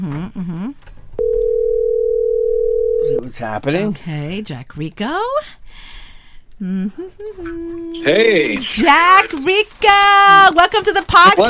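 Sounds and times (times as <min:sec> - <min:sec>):
outgoing FaceTime audio call ringing tone on a phone: 0:01.2 - 0:03.2
speech: 0:03.2 - 0:05.6, 0:06.6 - 0:11.4.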